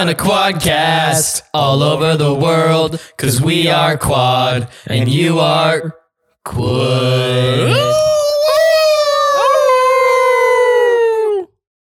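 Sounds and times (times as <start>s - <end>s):
speech: 0.0s - 8.2s
people howling imitating dogs: 7.6s - 11.4s.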